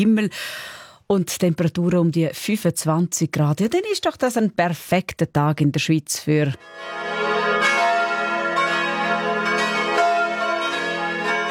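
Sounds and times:
speech: 0:00.0 - 0:07.0
church bells pealing: 0:06.6 - 0:11.4.

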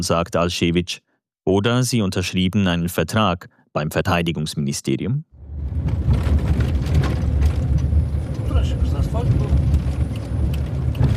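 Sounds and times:
speech: 0:00.0 - 0:06.0
car engine climbing a hill on an uneven road in the Kuzbass: 0:05.4 - 0:11.1
car rattling and jolting on an uneven road: 0:05.6 - 0:08.1.

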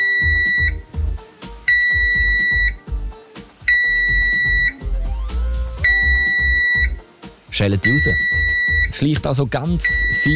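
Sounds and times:
oven timer alarm beeping: 0:00.0 - 0:00.8, 0:01.7 - 0:02.8, 0:03.7 - 0:04.8, 0:05.8 - 0:07.0, 0:07.8 - 0:08.9, 0:09.8 - 0:10.3
rhythmic thumping: 0:00.0 - 0:09.0, 0:09.6 - 0:10.3
speech: 0:07.6 - 0:10.3.

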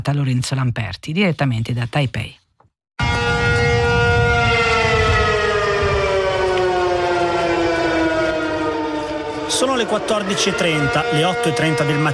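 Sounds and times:
speech: 0:00.0 - 0:02.4, 0:09.6 - 0:12.1
air-raid siren wailing in city: 0:03.0 - 0:12.1
low rumble of city noise: 0:03.0 - 0:12.1.

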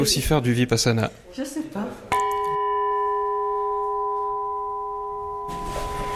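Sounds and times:
speech: 0:00.0 - 0:02.2
Burmese gong ringing: 0:02.2 - 0:06.1.

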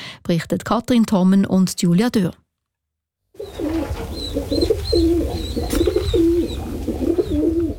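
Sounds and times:
speech: 0:00.3 - 0:02.4
pigeon wings fluttering: 0:03.4 - 0:07.7
pigeons cooing in Basel: 0:03.4 - 0:07.7
smaller birds chirping: 0:03.4 - 0:07.7.

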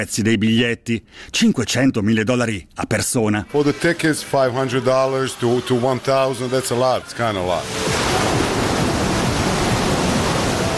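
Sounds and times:
speech: 0:00.0 - 0:08.2
ocean surf washing beneath the Santa Monica pier in California: 0:03.5 - 0:10.7.

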